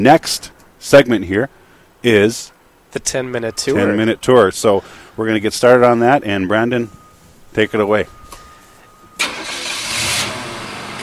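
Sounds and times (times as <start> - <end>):
speech: 0.0 - 7.0, 7.6 - 8.2
car engine cranking, revving and idling: 8.2 - 11.0.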